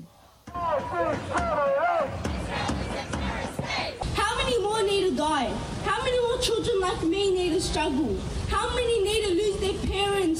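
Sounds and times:
protest crowd chanting in unison: 0.0s - 4.2s
speech: 5.2s - 10.3s.

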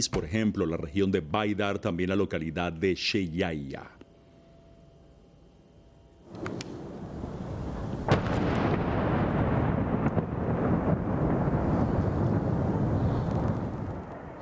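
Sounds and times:
speech: 0.0s - 4.0s
heavy explosions from an airstrike bombardment: 6.4s - 14.3s.

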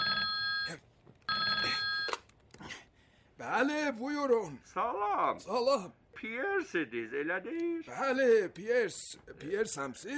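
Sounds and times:
telephone ringing on an outgoing call: 0.0s - 2.2s
speech: 3.4s - 10.1s.

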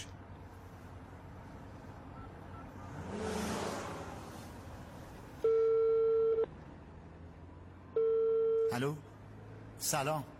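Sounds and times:
telephone ringback tone while placing a call from a moving car: 5.4s - 6.5s, 8.0s - 8.7s
speech: 8.8s - 9.1s, 9.8s - 10.3s.

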